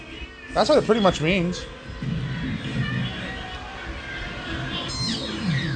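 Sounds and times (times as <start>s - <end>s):
speech: 0.6s - 1.8s
shouts from an arena crowd: 1.8s - 5.6s.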